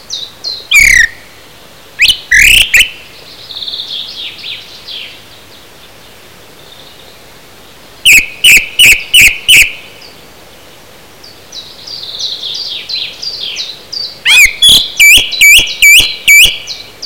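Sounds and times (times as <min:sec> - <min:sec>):
song thrush singing: 0:00.0 - 0:17.0
quieter high twittering: 0:08.0 - 0:09.7, 0:14.3 - 0:16.7.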